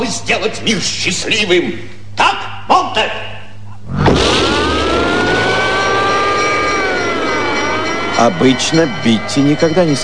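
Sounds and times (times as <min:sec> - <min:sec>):
speech: 0:00.1 - 0:03.3, 0:08.2 - 0:10.0
car engine roaring while accelerating and cornering sharply: 0:03.8 - 0:08.2.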